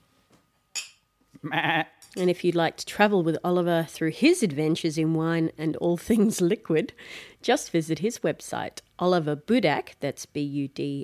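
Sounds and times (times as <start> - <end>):
wine glasses clinking in a toast: 0.8 - 1.1
speech: 1.4 - 11.0.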